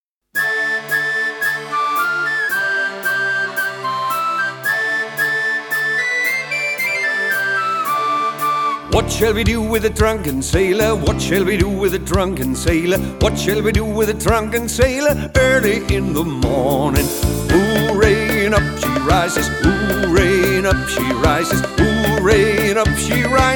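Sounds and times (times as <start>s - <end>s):
play-along music: 0.4s - 23.5s.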